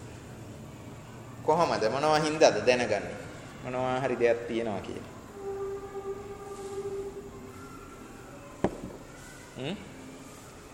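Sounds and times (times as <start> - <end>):
speech: 1.5 - 5.2, 9.6 - 9.9
train passing: 5.1 - 8.1
rising squeal: 5.2 - 9.5.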